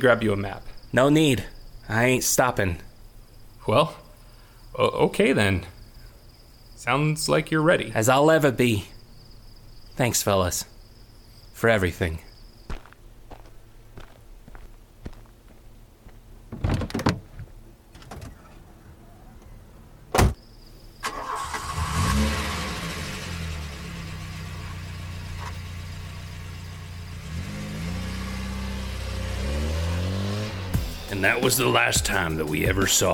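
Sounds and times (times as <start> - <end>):
speech: 0.0 - 2.9, 3.6 - 4.0, 4.7 - 5.8, 6.8 - 8.9, 10.0 - 10.7, 11.6 - 12.3, 31.5 - 33.1
footsteps: 12.7 - 16.3
heavy car door thud: 20.1 - 20.4
car engine starting and revving as the car drives away: 21.0 - 31.9.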